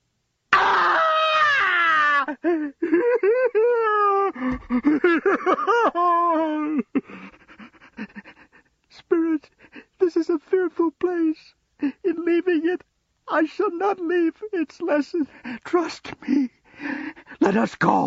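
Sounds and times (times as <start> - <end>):
man screaming: 0.5 - 2.4
man sobbing and whimpering: 0.6 - 17.7
laughter: 2.5 - 8.4
speech: 13.8 - 16.6, 17.5 - 18.0.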